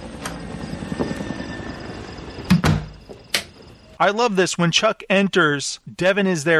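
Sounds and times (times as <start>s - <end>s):
helicopter rotor chop: 0.0s - 2.6s
sharp knocks or thuds: 2.5s - 3.5s
speech: 4.0s - 6.5s.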